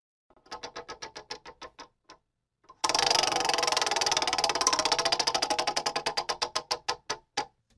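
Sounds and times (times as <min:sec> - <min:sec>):
prize wheel spun to pick a football team clicking: 0:02.8 - 0:06.5.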